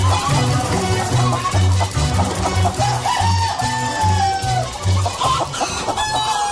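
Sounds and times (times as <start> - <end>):
song over a steady rhythmic thumping beat: 0.0 - 5.4
chickens clucking and squawking in a farmyard: 0.0 - 6.4
chickens crowing in a farmyard: 2.7 - 6.4.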